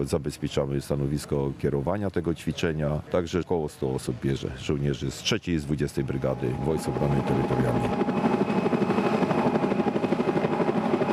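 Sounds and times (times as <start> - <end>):
speech: 0.0 - 8.4
Border Guard rescue helicopter hovering over water: 6.0 - 11.1.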